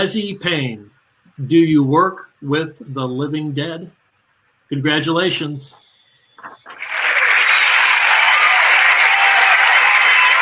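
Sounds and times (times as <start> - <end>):
speech: 0.0 - 4.0, 4.7 - 5.8
huge crowd applauding: 6.7 - 10.4.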